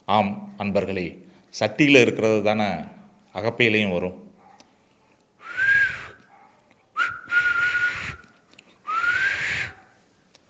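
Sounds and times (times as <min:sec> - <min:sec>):
speech: 0:00.1 - 0:04.2
person whistling a bright tune: 0:05.4 - 0:06.2, 0:07.0 - 0:08.2, 0:08.9 - 0:09.8.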